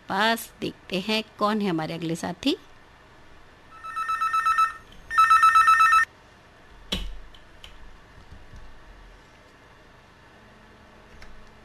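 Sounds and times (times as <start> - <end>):
speech: 0.1 - 2.7
telephone ringing: 3.7 - 6.1.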